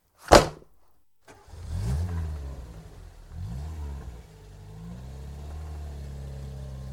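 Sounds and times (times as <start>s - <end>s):
brief sharp bang: 0.2s - 0.7s
car engine revving hard as it accelerates away in pursuit: 1.3s - 6.9s.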